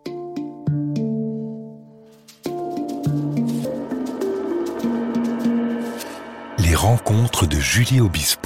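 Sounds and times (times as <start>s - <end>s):
plucked instrumental musical break in a radio interview: 0.0s - 6.2s
speech: 6.8s - 8.4s.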